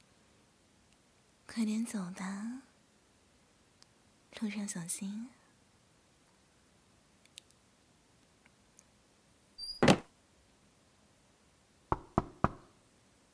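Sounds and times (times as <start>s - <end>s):
speech: 1.5s - 2.7s, 4.4s - 5.4s
faint clicks: 7.2s - 7.6s
knocking on a door: 11.9s - 12.7s.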